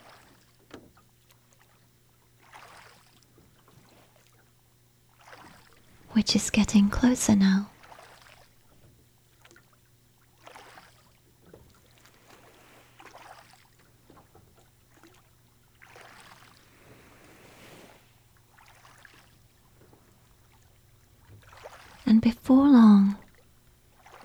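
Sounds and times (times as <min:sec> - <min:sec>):
oars dipping and pulling through water: 0:00.0 - 0:06.1, 0:07.0 - 0:24.2
speech: 0:06.2 - 0:07.7.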